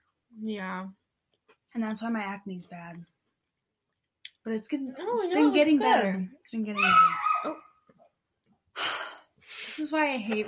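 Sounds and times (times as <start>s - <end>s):
speech: 0.4s - 1.0s, 1.7s - 3.1s, 4.4s - 7.6s, 9.8s - 10.4s
dog barking at a house: 6.8s - 7.8s.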